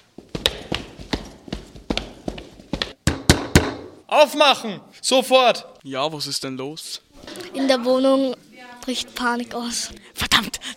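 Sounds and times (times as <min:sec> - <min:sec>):
soldiers' footsteps coming up a staircase: 0:00.0 - 0:04.0
speech: 0:04.1 - 0:10.6.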